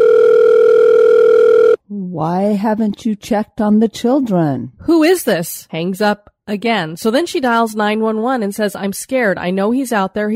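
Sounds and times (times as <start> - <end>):
telephone ringing for an incoming call: 0.0 - 1.8
speech: 2.2 - 10.3.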